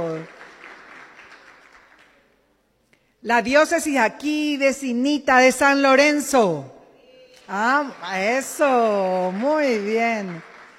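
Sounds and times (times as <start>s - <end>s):
speech: 0.0s - 0.4s, 3.2s - 6.8s, 7.5s - 10.5s
crowd applauding: 0.0s - 2.3s, 7.3s - 10.7s.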